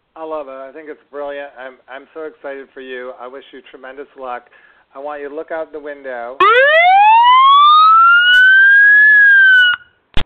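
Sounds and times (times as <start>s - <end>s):
speech: 0.2s - 7.0s
fire engine siren wailing outside: 6.4s - 9.9s.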